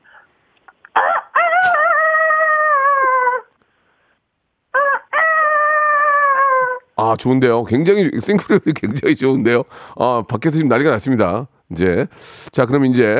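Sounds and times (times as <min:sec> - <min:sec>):
person on a phone call imitating a rooster crowing: 0:00.9 - 0:03.6, 0:04.7 - 0:07.0
speech: 0:07.1 - 0:13.1.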